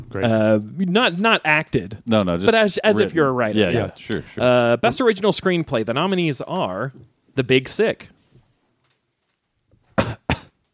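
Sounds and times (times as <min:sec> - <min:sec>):
speech: 0:00.1 - 0:08.2
loud harsh coughs: 0:10.0 - 0:10.6.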